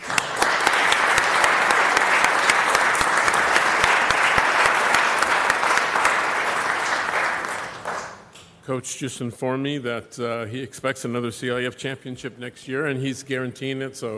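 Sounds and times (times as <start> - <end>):
crowd applauding: 0.0 - 8.3
speech: 8.7 - 14.1.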